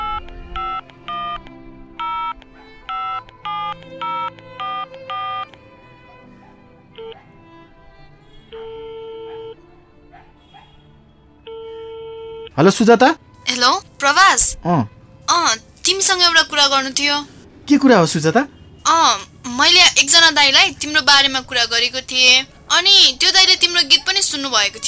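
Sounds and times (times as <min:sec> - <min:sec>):
longer steadier phone tones: 0:00.0 - 0:05.5, 0:08.5 - 0:09.6, 0:11.5 - 0:12.5
touch-tone phone keypad beeps dialling a call: 0:00.0 - 0:05.6
speech: 0:12.6 - 0:14.9, 0:15.9 - 0:24.8.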